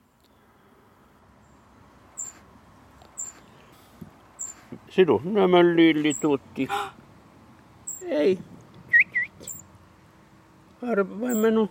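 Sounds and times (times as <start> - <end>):
small bird chirping, possibly great tit: 1.4 - 4.8, 6.0 - 6.4, 7.8 - 8.3, 8.9 - 9.7, 11.2 - 11.6
speech: 5.0 - 7.0, 8.1 - 8.5, 10.8 - 11.6.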